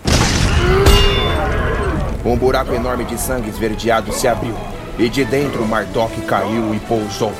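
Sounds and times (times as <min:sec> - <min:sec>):
sharper blast cracking through: 0:00.0 - 0:07.2
explosion bursting from inside a monster's belly: 0:00.0 - 0:07.3
speech: 0:02.2 - 0:07.3.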